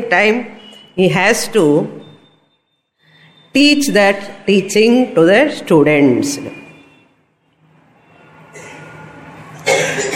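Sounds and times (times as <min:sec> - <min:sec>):
speech: 0:00.1 - 0:02.0, 0:03.6 - 0:06.6
person coughing: 0:08.5 - 0:08.9, 0:09.6 - 0:10.1.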